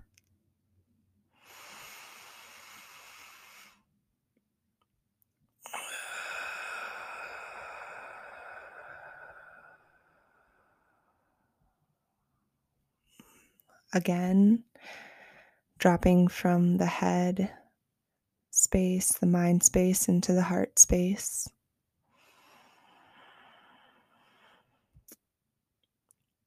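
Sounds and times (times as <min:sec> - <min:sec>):
person taking a slow deep breath during a calming exercise: 0:01.4 - 0:03.9, 0:05.6 - 0:11.4, 0:14.8 - 0:15.6, 0:22.1 - 0:24.9
speech: 0:13.9 - 0:15.0, 0:15.8 - 0:17.6, 0:18.7 - 0:21.6.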